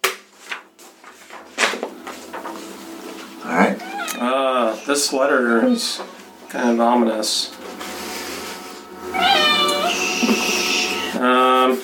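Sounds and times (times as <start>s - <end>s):
speech: 3.5s - 3.8s, 4.9s - 7.6s
cat meowing: 3.7s - 4.4s, 9.1s - 11.2s.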